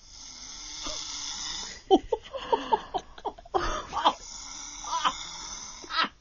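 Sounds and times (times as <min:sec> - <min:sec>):
woman snoring in her sleep: 0:00.0 - 0:01.9, 0:03.6 - 0:06.0.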